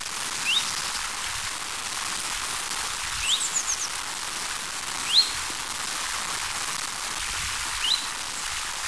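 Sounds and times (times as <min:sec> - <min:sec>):
Chiffchaff Phylloscopus collybita calling in Hanko Finland: 0:00.2 - 0:08.8.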